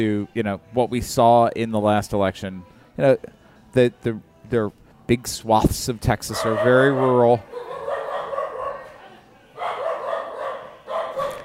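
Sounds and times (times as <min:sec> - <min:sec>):
speech: 0:00.0 - 0:07.5
dog barking: 0:06.3 - 0:11.4.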